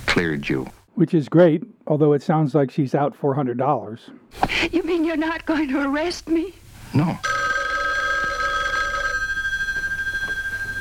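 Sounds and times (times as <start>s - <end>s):
speech: 0.2s - 7.4s
telephone ringing with an incoming call: 7.2s - 10.7s.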